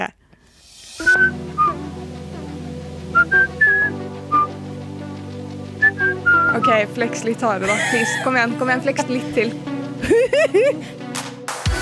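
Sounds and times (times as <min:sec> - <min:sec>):
person whistling a tune: 0:01.0 - 0:01.8, 0:03.2 - 0:04.6, 0:05.8 - 0:06.6
speech: 0:06.6 - 0:11.0
laughter: 0:07.6 - 0:10.9.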